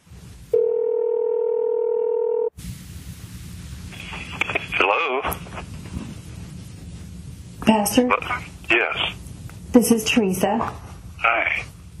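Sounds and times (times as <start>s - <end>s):
telephone dial tone: 0.6s - 2.5s
speech: 7.8s - 11.4s.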